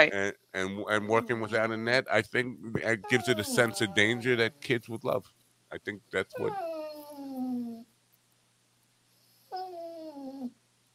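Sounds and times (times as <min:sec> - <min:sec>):
speech: 0:00.0 - 0:06.7
dog whining: 0:03.0 - 0:04.3, 0:06.3 - 0:07.9, 0:09.5 - 0:10.6.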